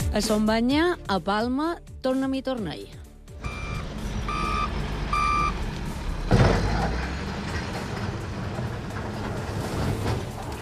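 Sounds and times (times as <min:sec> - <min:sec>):
speech: 0:00.2 - 0:03.0
excavator continuous low engine drone in the Son Banya settlement in Palma, Mallorca: 0:03.3 - 0:10.5
excavator reversing warning beeps in the Son Banya settlement in Palma, Mallorca: 0:03.4 - 0:05.6
excavator heavy machinery clatter: 0:03.8 - 0:10.6.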